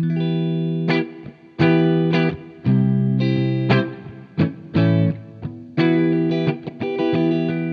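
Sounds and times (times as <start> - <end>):
distorted electric guitar riff through an amp on its normal channel: 0.0 - 7.7.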